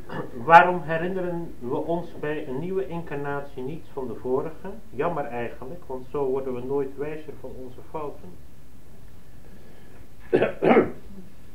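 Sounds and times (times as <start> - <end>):
person clearing throat: 0.0 - 0.4, 10.2 - 11.2
speech: 0.4 - 8.5, 10.3 - 11.0.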